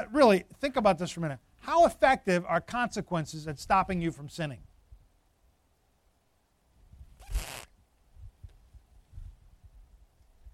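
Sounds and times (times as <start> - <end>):
speech: 0.0 - 4.7
zipper being pulled: 7.2 - 7.7.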